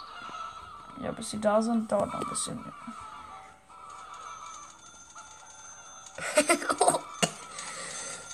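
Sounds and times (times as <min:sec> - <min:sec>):
steady hum: 0:00.0 - 0:08.3
speech: 0:01.0 - 0:03.1
person coughing: 0:06.2 - 0:07.6.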